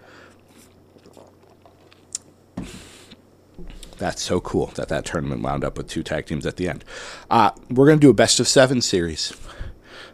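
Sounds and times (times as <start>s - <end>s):
person sipping a drink of water: 0.2s - 4.0s
speech: 3.6s - 9.6s.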